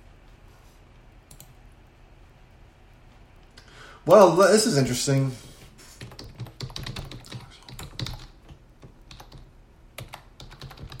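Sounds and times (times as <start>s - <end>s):
speech: 4.0s - 5.5s
typing on a computer keyboard: 6.0s - 10.9s.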